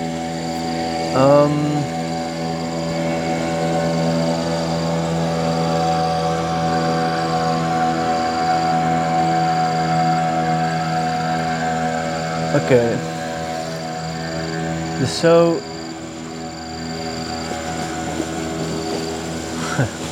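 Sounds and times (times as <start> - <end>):
boat engine droning: 0.0 - 20.0
speech: 1.2 - 2.0, 12.7 - 13.0, 15.0 - 15.7.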